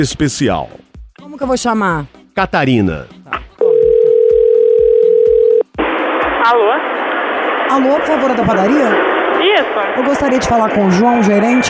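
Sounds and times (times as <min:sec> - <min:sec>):
speech: 0:00.0 - 0:03.2, 0:06.4 - 0:06.8, 0:07.7 - 0:11.6
telephone dial tone while placing a prank call to a bakery: 0:03.6 - 0:05.6.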